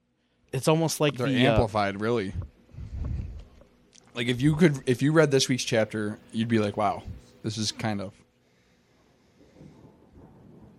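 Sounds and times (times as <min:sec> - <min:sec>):
speech: 0:00.5 - 0:02.5, 0:04.2 - 0:08.2
low rolling thunder: 0:10.1 - 0:10.7.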